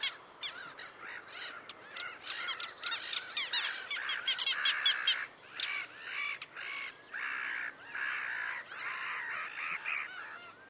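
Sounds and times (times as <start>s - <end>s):
bird flock honking and squawking: 0.0s - 10.6s.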